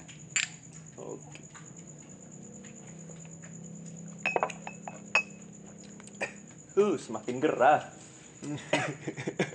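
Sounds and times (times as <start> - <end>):
low hum: 0.0 - 9.5
glasses clinking in a toast: 4.2 - 5.4
speech: 6.8 - 9.5.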